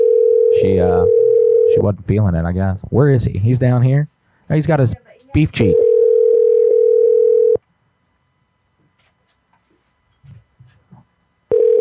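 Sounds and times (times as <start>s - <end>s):
telephone dial tone while placing a call: 0.0s - 1.8s, 5.7s - 7.6s, 11.5s - 11.7s
speech: 0.6s - 1.2s, 1.8s - 5.8s.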